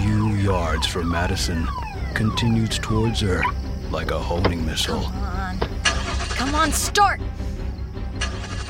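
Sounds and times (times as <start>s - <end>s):
car engine in a car park turning over and starting: 0.0s - 8.6s
speech: 0.5s - 5.7s, 6.4s - 7.4s.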